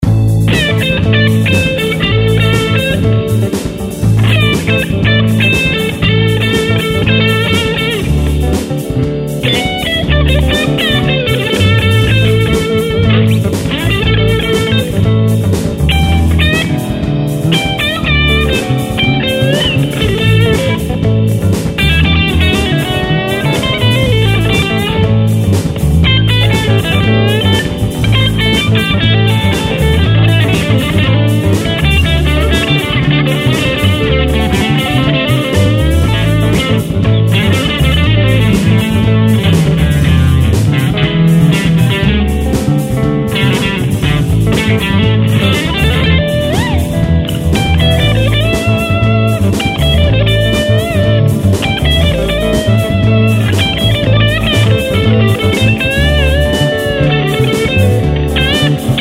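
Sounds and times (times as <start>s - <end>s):
blues solo guitar in A: 0.0s - 58.9s.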